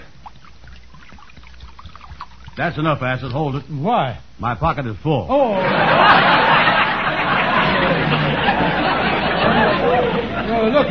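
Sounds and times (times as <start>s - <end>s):
liquid pouring from a jug: 0.0s - 3.6s
speech: 2.6s - 6.5s
laughter: 5.5s - 10.8s.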